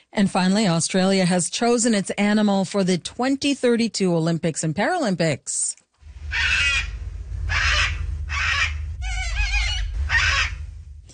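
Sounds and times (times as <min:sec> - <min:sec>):
speech: 0:00.1 - 0:06.9
steady low rumble: 0:06.0 - 0:11.1
cockatoo screeching: 0:06.3 - 0:10.7.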